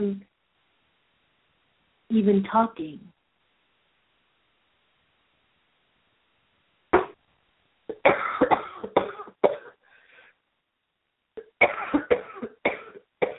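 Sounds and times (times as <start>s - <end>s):
speech: 0.0s - 0.3s, 2.1s - 3.1s
coughing: 7.0s - 7.2s, 7.9s - 9.8s, 11.4s - 13.3s
faint raspy breath: 9.8s - 10.4s.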